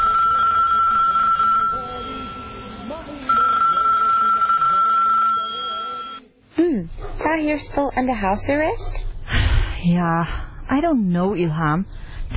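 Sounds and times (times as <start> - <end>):
telephone ringing in electronic bursts: 0.0 - 6.2
speech: 7.2 - 9.0, 9.8 - 12.3.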